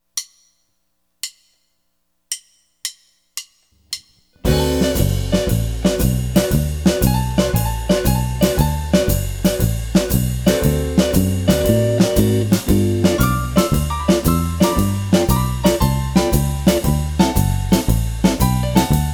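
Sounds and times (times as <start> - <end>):
Texas swing blues music in D: 4.4 - 19.1.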